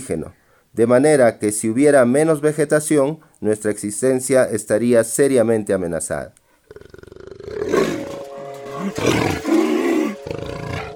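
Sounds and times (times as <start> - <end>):
speech: 0.0 - 7.6
jaguar roaring in the Amazon: 6.7 - 10.9.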